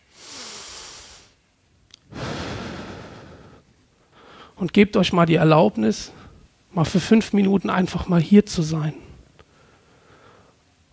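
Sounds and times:
deep breath in and out during a guided relaxation exercise: 0.0s - 1.4s, 2.1s - 4.6s, 9.1s - 10.6s
speech: 4.6s - 6.2s, 6.8s - 9.0s.

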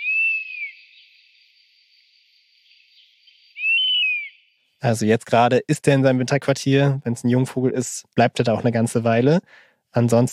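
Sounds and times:
European honey buzzard whistling calls: 0.0s - 1.1s, 3.6s - 4.4s
speech: 4.8s - 10.3s.

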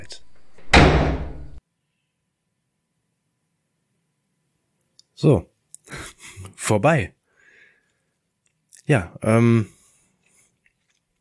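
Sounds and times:
heavy door slamming shut: 0.4s - 1.6s
speech: 5.2s - 6.0s, 6.7s - 7.2s, 8.9s - 9.8s.

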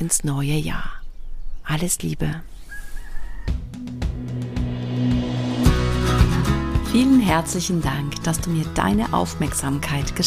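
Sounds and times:
speech: 0.0s - 1.0s, 1.7s - 2.5s, 6.9s - 10.2s
birds calling outdoors in the morning: 0.7s - 3.9s
steady low rumble possibly of a vehicle: 3.5s - 8.2s.

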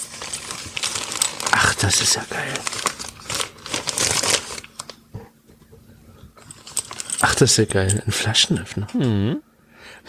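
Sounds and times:
gift package being torn open: 0.0s - 5.0s, 6.5s - 7.5s
gift package wrapping rustling: 0.0s - 5.0s, 6.4s - 8.0s
speech: 1.8s - 2.9s, 7.4s - 10.0s.

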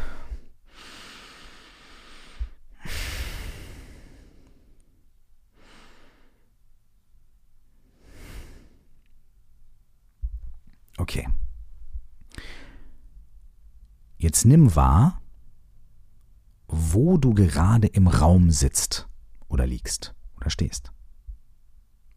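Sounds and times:
slow deep breaths during a guided breathing exercise: 0.0s - 6.6s, 7.7s - 9.1s, 12.2s - 13.2s
speech: 11.1s - 11.4s, 14.2s - 15.2s, 16.9s - 21.0s.

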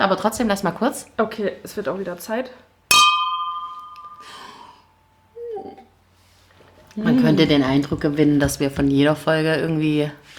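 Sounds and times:
speech: 0.1s - 2.7s, 7.0s - 10.3s
glasses clinking for a toast with sparkling wine: 2.9s - 4.7s
breathy gasp: 4.2s - 4.9s.

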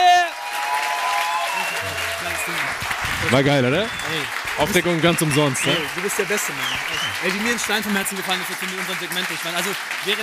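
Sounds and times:
scattered shouts over the clapping: 0.0s - 2.8s
audience applause: 0.0s - 10.2s
speech: 3.2s - 10.2s.

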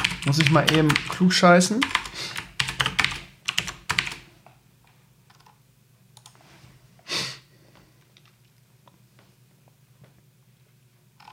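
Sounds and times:
typing on a computer keyboard while writing comments: 0.0s - 4.2s
speech: 0.2s - 2.4s.

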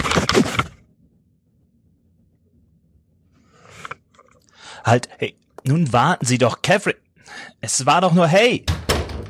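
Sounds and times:
speech: 4.8s - 8.9s
hotel room door slamming shut: 8.7s - 9.2s.

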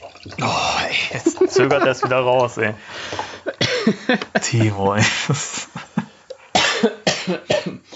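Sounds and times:
speech: 0.2s - 3.3s, 3.9s - 5.6s
laughter: 1.1s - 2.8s, 3.4s - 6.2s
person coughing harshly: 1.4s - 2.2s, 3.5s - 4.9s, 6.6s - 7.9s.

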